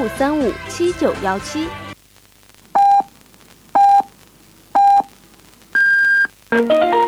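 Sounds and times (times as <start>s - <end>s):
speech: 0.0s - 1.8s, 6.5s - 6.9s
radio hourly time signal pips: 2.8s - 3.1s, 3.8s - 4.1s, 4.8s - 5.1s, 5.7s - 6.4s.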